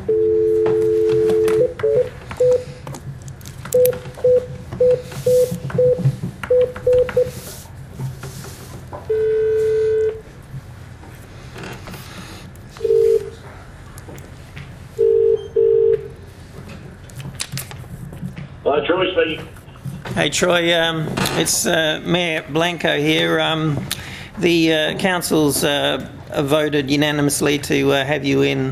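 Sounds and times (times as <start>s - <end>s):
telephone keypad dialing beeps: 0.1s - 2.6s, 3.7s - 7.3s, 9.1s - 10.2s
steady telephone tone: 0.1s - 2.8s, 3.7s - 7.3s, 9.1s - 10.3s, 12.8s - 13.4s, 15.0s - 16.1s
speech: 20.3s - 28.7s.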